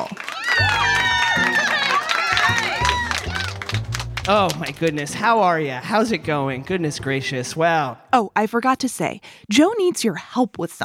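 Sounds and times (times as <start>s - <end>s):
audience cheering with whoops and shouts: 0.0s - 4.5s
audience applause: 0.0s - 5.2s
speech: 4.3s - 10.8s.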